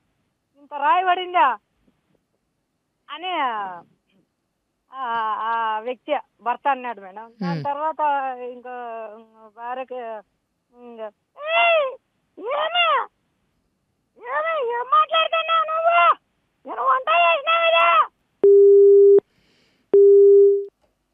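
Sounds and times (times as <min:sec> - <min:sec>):
speech: 0:00.6 - 0:01.7, 0:03.1 - 0:04.0, 0:04.9 - 0:13.2, 0:14.2 - 0:18.6
caller making expressive sing-song vocal sounds: 0:07.4 - 0:07.7
telephone busy tone after a call is cut off: 0:18.4 - 0:19.2, 0:20.0 - 0:20.7.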